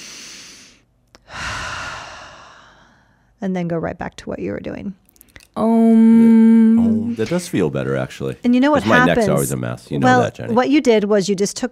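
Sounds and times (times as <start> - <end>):
deep breath during a neck and shoulder stretching exercise: 0.0 - 3.4
speech: 3.4 - 5.0, 5.6 - 11.7.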